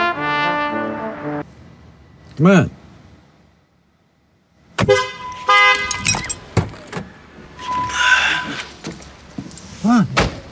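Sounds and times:
traffic noise: 1.4s - 10.5s
speech: 2.4s - 2.8s
car horn honking at a driver at a green light: 4.8s - 8.8s
clunks: 4.8s - 10.5s.

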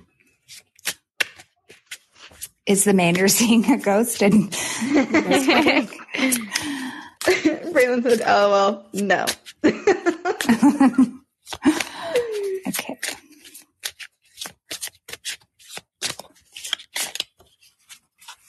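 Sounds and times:
deck of playing cards being shuffled: 0.0s - 4.3s, 5.5s - 9.6s, 10.4s - 18.4s
speech: 0.5s - 0.7s, 2.7s - 6.7s, 7.8s - 9.4s, 10.5s - 11.2s
laughter: 4.5s - 7.8s, 9.6s - 12.6s
person murmuring: 5.1s - 8.4s, 12.0s - 13.0s.

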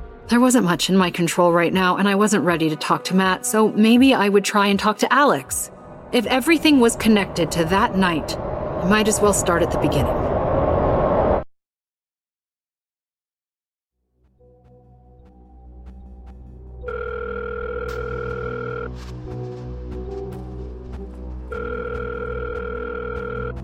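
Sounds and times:
speech: 0.3s - 10.3s
low steady hum: 5.6s - 11.3s
telephone ringing with electronic trill: 16.8s - 18.9s, 21.5s - 23.6s.

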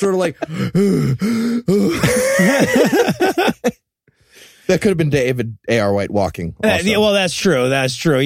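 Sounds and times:
speech: 0.0s - 3.8s, 4.7s - 8.2s
person imitating heavy huffing and puffing with groaning breaths: 0.4s - 2.2s
laughter: 1.8s - 3.8s.

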